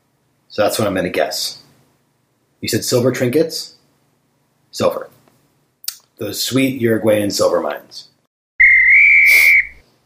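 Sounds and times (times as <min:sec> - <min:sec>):
speech: 0:00.5 - 0:01.6, 0:02.6 - 0:03.8, 0:04.7 - 0:05.1, 0:06.2 - 0:08.1
person whistling a single steady note: 0:08.6 - 0:09.8.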